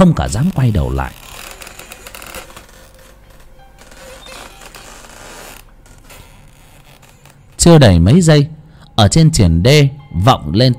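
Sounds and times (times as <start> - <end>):
speech: 0.0 - 1.4, 7.6 - 10.7
door slowly creaking open with a grainy groan: 0.0 - 7.7
rustling: 0.0 - 7.7.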